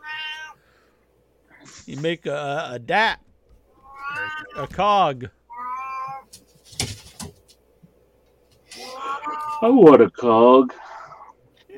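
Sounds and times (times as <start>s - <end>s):
cat meowing: 0.0s - 0.6s, 3.8s - 4.7s, 5.5s - 6.3s, 8.8s - 9.8s
speech: 1.7s - 3.3s, 4.4s - 5.4s, 9.6s - 10.8s.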